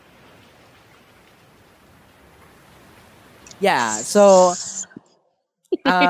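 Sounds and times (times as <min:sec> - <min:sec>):
steady rain from a thunderstorm rolling in over Davao: 0:00.0 - 0:04.8
speech: 0:03.6 - 0:04.7, 0:05.9 - 0:06.0
laughter: 0:05.8 - 0:06.0.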